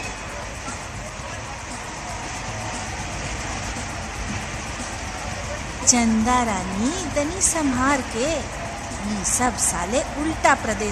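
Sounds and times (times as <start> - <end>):
crowd chatter in a busy railway station: 0.0 - 10.9
rumble of trains: 0.0 - 10.9
speech: 5.9 - 10.9.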